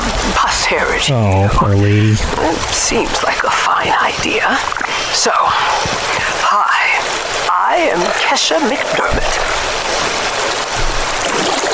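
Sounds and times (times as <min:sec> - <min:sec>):
flowing water rushing while collecting a sample: 0:00.0 - 0:11.7
speech: 0:00.7 - 0:09.6.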